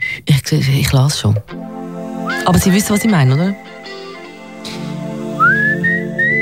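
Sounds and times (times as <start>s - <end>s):
speech: 0.5s - 1.6s, 2.4s - 3.7s
person whistling a short song melody: 2.3s - 2.5s, 5.4s - 6.4s.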